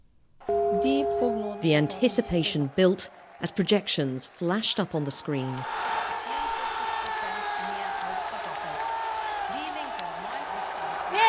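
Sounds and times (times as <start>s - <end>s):
speech: 0.5s - 6.0s
election night crowd cheering: 0.5s - 11.2s
people whooping and shouting: 5.0s - 11.2s.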